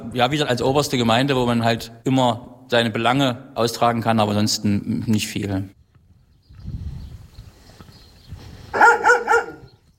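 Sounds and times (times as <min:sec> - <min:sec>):
speech: 0:00.1 - 0:05.8
dog barking: 0:08.7 - 0:09.8.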